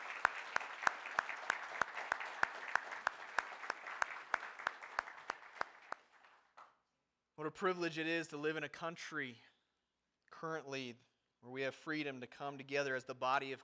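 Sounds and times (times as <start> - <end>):
crowd applauding military veterans: 0.0 - 6.6
speech: 7.4 - 9.5, 10.4 - 13.6.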